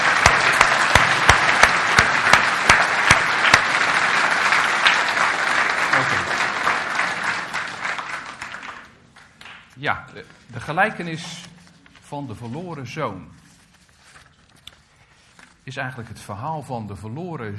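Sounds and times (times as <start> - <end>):
large gathering giving sustained dense applause: 0.0 - 9.7
sharp claps: 0.0 - 9.8
speech: 9.8 - 11.5, 12.1 - 13.4, 15.7 - 17.5.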